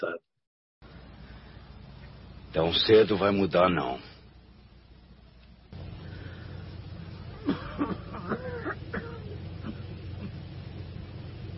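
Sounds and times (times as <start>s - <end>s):
speech: 0.0s - 0.3s, 2.6s - 4.1s
steady low rumbling hum: 0.8s - 11.5s
harsh barking coughs: 7.4s - 10.5s.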